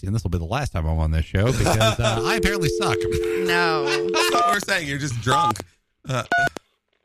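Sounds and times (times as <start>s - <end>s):
speech: 0.0s - 6.6s
laughter: 1.5s - 2.3s
telephone dialing tones: 2.2s - 4.6s.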